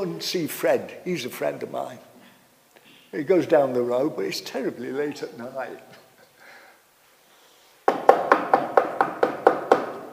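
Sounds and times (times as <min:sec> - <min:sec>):
speech: 0:00.0 - 0:02.1, 0:03.1 - 0:06.0
sharp knocks on a wooden surface at a friend's house: 0:07.9 - 0:10.1.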